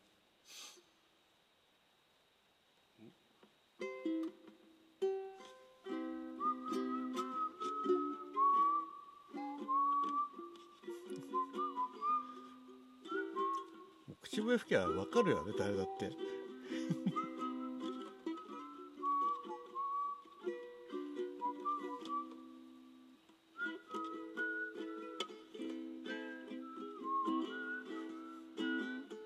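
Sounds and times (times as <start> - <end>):
breath: 0.4 - 0.9
plucked ukulele chords strummed during ukulele practice: 3.8 - 29.2
person whistling a slow gliding melody: 6.0 - 14.2, 14.8 - 22.9, 23.6 - 29.2
speech: 14.4 - 16.4.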